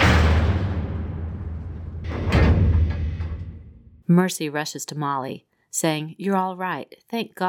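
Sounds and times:
heavy emergency hatch sliding and slamming shut: 0.0 - 4.0
low lingering rumble: 0.0 - 4.0
speech: 4.1 - 7.4.

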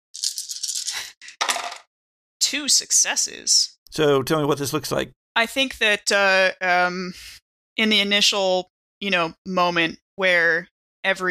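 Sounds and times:
dice rolling on a hard tabletop for a strength check: 0.2 - 1.9
speech: 2.5 - 11.2.

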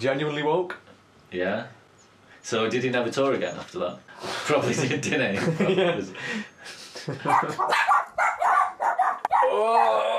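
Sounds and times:
speech: 0.0 - 1.8, 2.4 - 7.9, 9.6 - 10.1
laughter: 4.5 - 7.7
dog barking excitedly: 7.2 - 10.1
dog drawn-out whining howl: 7.6 - 10.1.

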